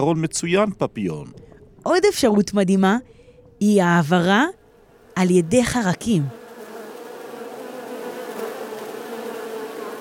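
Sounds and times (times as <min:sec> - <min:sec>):
speech: 0:00.0 - 0:04.6, 0:05.2 - 0:06.4
bee buzzing: 0:03.6 - 0:09.9.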